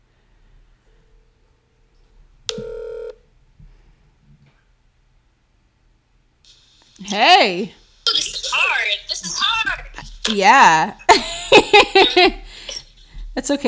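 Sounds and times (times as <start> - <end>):
faint steady hum: 0.0 - 13.6
outgoing call electronic phone tone: 2.5 - 3.2
speech: 7.0 - 8.4, 10.3 - 12.4, 13.4 - 13.6
laughter: 11.0 - 12.9.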